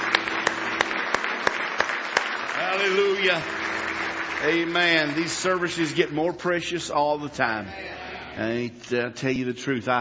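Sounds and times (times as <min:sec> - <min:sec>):
church congregation clapping hands in praise: 0:00.0 - 0:08.2
speech: 0:02.8 - 0:03.6, 0:04.4 - 0:09.9.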